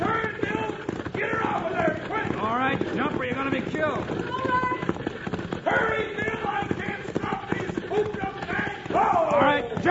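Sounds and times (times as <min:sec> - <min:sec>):
galloping hooves of horses pulling a wagon: 0:00.0 - 0:09.8.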